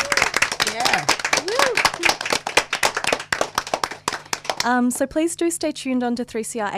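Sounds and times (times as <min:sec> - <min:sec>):
people whooping: 0:00.0 - 0:02.3
room audience applauding performers: 0:00.0 - 0:04.7
speech: 0:04.6 - 0:06.7.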